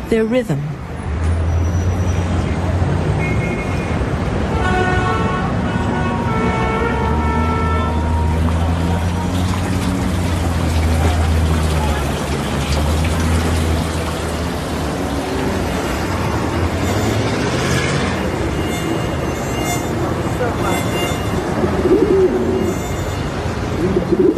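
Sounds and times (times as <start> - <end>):
dense constant urban noise: 0.0 - 24.3
pigeon cooing in the eaves of a skyscraper: 21.6 - 23.0, 23.7 - 24.3.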